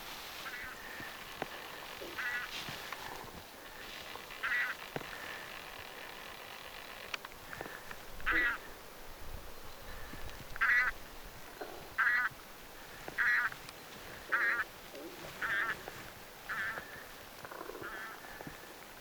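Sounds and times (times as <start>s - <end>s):
taiga bean geese fabalis calling: 0.0s - 6.1s, 7.5s - 8.8s, 9.8s - 18.7s.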